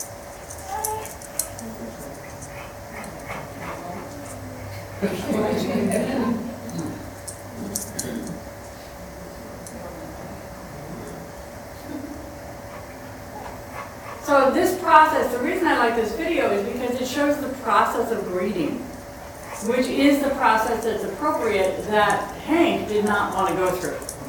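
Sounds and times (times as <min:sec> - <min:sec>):
steady hum: 0:00.0 - 0:24.2
small dogs in a video whimpering and yipping: 0:00.5 - 0:01.4
laughter: 0:01.8 - 0:08.4
speech: 0:05.0 - 0:06.4, 0:14.9 - 0:18.9, 0:19.6 - 0:24.0.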